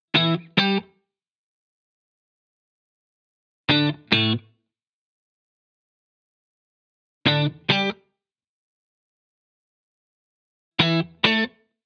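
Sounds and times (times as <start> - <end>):
70s-style guitar playing in D at 135 BPM: 0.1 - 0.9, 3.7 - 4.5, 7.3 - 8.0, 10.8 - 11.5.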